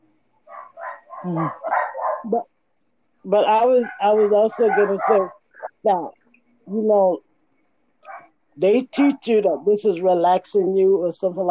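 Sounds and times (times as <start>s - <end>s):
dog barking: 0.5s - 2.4s, 3.7s - 5.4s, 8.1s - 8.3s
speech: 1.2s - 2.5s, 3.2s - 7.3s, 8.6s - 11.4s.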